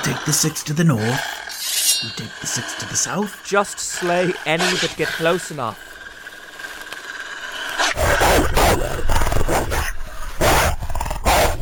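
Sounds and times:
speech: 0.0 - 1.4, 2.0 - 5.9
pack of wolves snarling and barking: 7.8 - 11.5.

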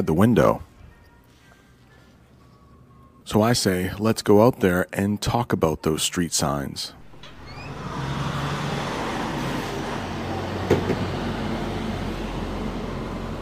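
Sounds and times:
speech: 0.0 - 0.7, 3.3 - 7.0
heavy road traffic with large vehicles rolling past: 7.0 - 13.3.

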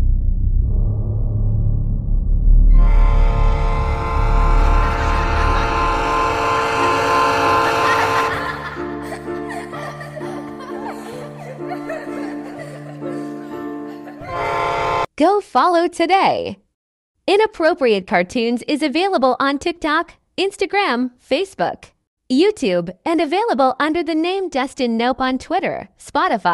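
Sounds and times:
low rumble: 0.0 - 6.9
loud sustained train horn: 2.7 - 8.8, 14.2 - 15.1
laughter: 4.8 - 6.4, 7.2 - 14.6
speech: 15.2 - 16.6, 17.3 - 26.5.

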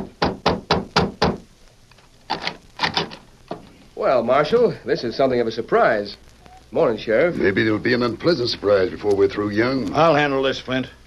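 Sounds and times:
knocking on a wooden door: 0.0 - 1.4
speech: 4.0 - 11.0.

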